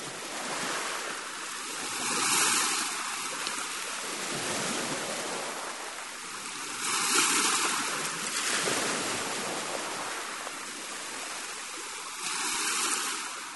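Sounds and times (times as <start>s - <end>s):
sea waves breaking with hissing surf: 0.0s - 13.5s.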